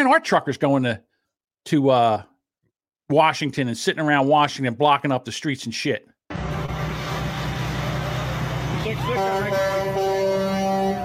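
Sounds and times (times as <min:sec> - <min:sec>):
speech: 0:00.0 - 0:02.3, 0:03.1 - 0:06.4, 0:08.9 - 0:10.0
low rumble of traffic: 0:06.3 - 0:11.0
vehicle horn honking: 0:08.8 - 0:11.0.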